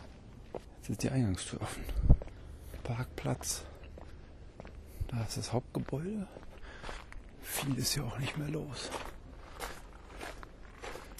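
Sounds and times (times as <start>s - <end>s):
speech: 0.6s - 2.1s, 2.9s - 3.7s, 5.1s - 9.1s
footsteps crunching through an outdoor gravel bed: 1.8s - 11.1s.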